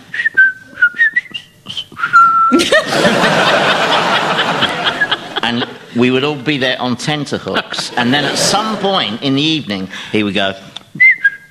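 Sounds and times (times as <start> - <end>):
person whistling a jaunty march tune mimicking a parrot: 0.1 - 2.6, 11.0 - 11.4
loud sustained laughter: 2.6 - 6.0, 7.4 - 9.2
speech: 5.5 - 10.7.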